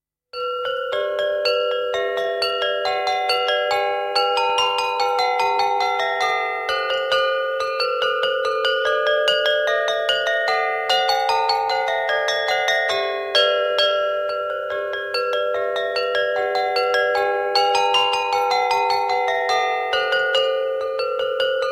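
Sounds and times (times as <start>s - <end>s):
small bells ringing in a slow march: 0.4s - 21.7s.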